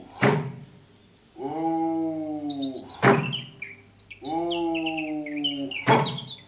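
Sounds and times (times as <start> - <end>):
birds singing in a forest: 0.0 - 6.4
sharp loud knocks: 0.2 - 0.7, 3.0 - 3.5, 5.8 - 6.3.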